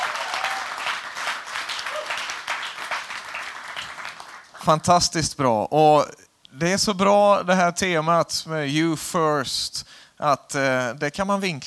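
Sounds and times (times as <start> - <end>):
room full of people applauding: 0.0 - 4.6
speech: 4.7 - 11.6.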